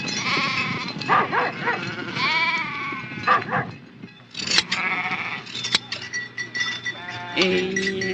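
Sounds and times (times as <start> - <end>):
flock of sheep bleating: 0.2 - 3.5, 4.6 - 5.5, 7.0 - 8.0.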